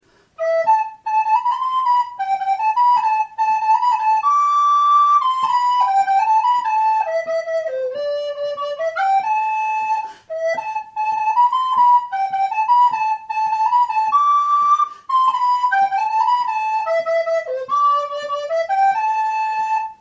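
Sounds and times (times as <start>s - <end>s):
flute playing a jig: 0.3s - 19.9s.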